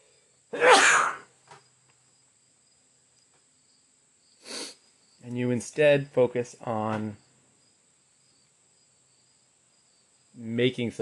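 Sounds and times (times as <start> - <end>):
steady high insect-like hum: 0.0 - 10.9
person sneezing loudly: 0.6 - 1.3, 4.5 - 4.8
faint sniff: 4.4 - 4.9
speech: 5.6 - 7.2, 10.6 - 11.0.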